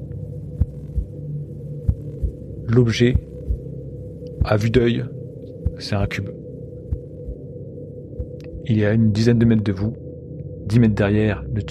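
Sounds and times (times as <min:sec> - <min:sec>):
deep slow heartbeat of a titanic heart in a cave tunnel: 0:00.0 - 0:04.8, 0:05.6 - 0:06.2, 0:06.8 - 0:08.7
low steady droning hum: 0:00.0 - 0:11.7
speech: 0:02.7 - 0:03.3, 0:04.4 - 0:05.2, 0:05.8 - 0:06.4, 0:08.7 - 0:10.0, 0:10.7 - 0:11.7.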